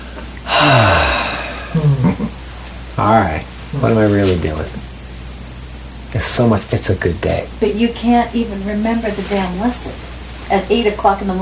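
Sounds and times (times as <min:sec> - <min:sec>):
person taking a deep breath: 0:00.0 - 0:01.8
speech: 0:03.0 - 0:04.9, 0:06.2 - 0:11.4.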